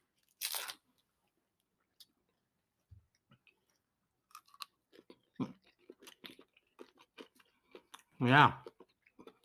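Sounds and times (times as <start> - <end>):
chewing a crunchy candy bar with potato chips inside: 3.5 - 9.4
speech: 8.2 - 8.6.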